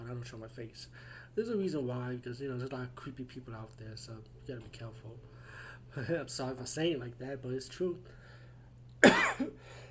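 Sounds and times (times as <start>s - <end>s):
low steady hum: 0.0s - 9.8s
speech: 0.1s - 8.2s
person coughing: 9.0s - 9.7s.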